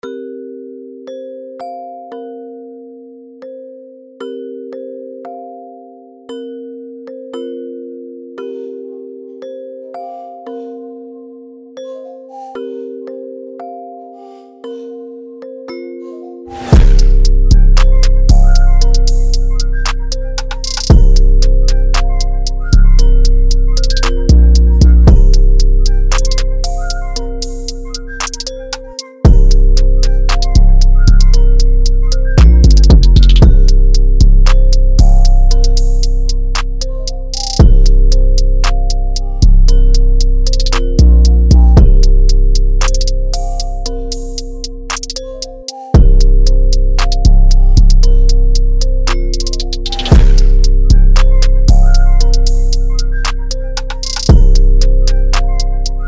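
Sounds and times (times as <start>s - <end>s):
high chill beat: 16.5s - 56.0s.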